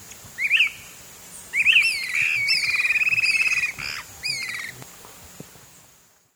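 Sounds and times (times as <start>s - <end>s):
Swainson's flycatcher whistled calls and buzzy trill in eastern lowlands of South America: 0.4s - 4.7s.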